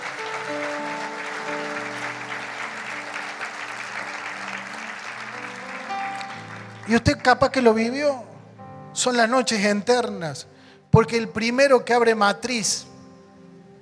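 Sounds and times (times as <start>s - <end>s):
crowd applauding: 0.0s - 7.8s
speech: 6.9s - 8.3s, 9.0s - 12.9s.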